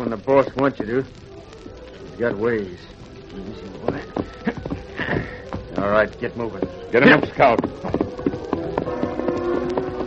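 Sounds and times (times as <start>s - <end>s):
speech: 0.0s - 1.4s, 2.2s - 8.0s
horse hooves clip-clopping at a walking pace: 3.6s - 10.0s.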